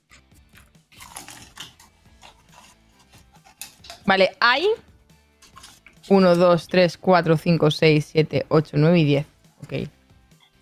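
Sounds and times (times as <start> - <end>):
person chewing a mouthful of gum: 0.0 - 4.0, 5.4 - 6.1
speech: 4.1 - 4.9, 6.1 - 10.0.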